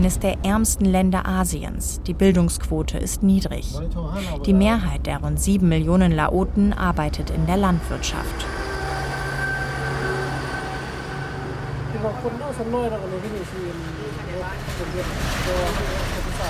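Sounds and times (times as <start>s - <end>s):
high-speed train rumbling past: 0.0s - 3.0s, 4.6s - 16.4s
speech: 0.0s - 8.6s, 12.1s - 16.4s
train wheel noise: 6.4s - 16.4s
train horn droning: 8.1s - 12.6s.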